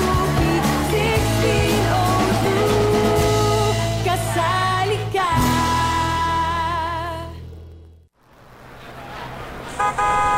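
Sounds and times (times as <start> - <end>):
jeepney engine and road noise: 0.3 - 10.3
jeepney horn honking: 9.8 - 10.3.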